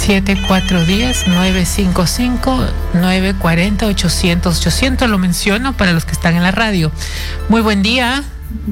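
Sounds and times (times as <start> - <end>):
speech: 0.1 - 8.6
telephone electronic ringtone for an incoming call: 0.3 - 1.9.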